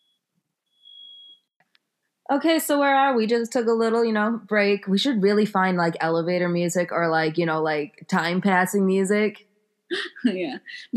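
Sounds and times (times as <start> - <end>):
shrill high-pitched smoke alarm beeping: 0.0 - 1.5
speech: 2.3 - 10.9.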